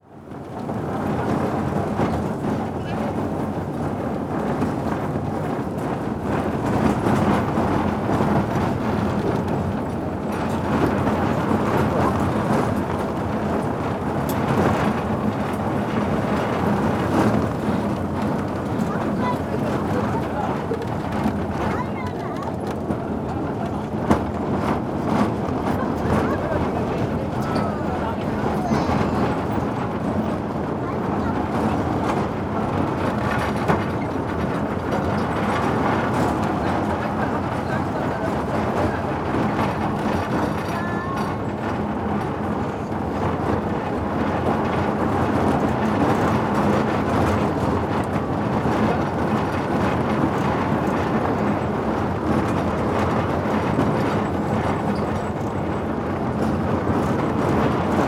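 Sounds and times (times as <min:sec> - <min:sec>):
train at Spreepark: 0:00.0 - 0:58.0.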